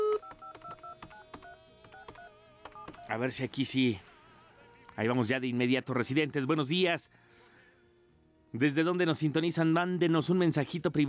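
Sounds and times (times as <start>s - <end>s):
telephone keypad tones as a number is dialed: 0.0s - 3.2s
speech: 3.1s - 4.1s, 5.0s - 7.4s, 8.5s - 11.0s.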